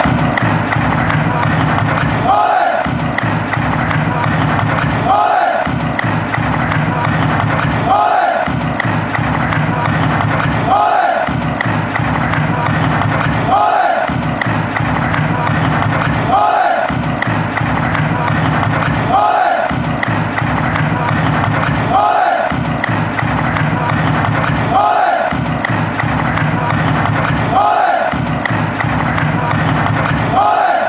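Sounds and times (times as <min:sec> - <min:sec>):
fans chanting ole: 0:00.0 - 0:30.8.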